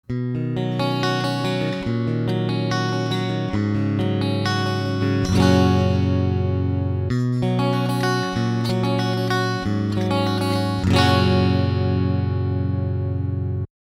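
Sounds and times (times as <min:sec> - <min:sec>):
clean rhythm guitar: 0:00.0 - 0:13.7.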